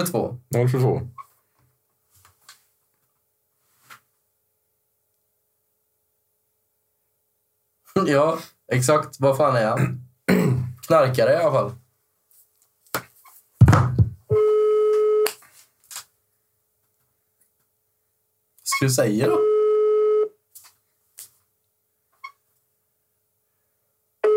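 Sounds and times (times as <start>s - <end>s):
speech: 0.0s - 1.2s, 8.0s - 11.8s, 18.7s - 19.5s
electronic phone call tone while dialing: 14.3s - 15.3s, 19.3s - 20.3s.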